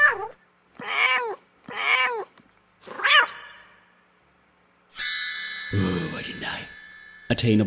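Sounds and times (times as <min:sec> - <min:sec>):
cat meowing: 0:00.0 - 0:03.7
speech: 0:05.7 - 0:07.6.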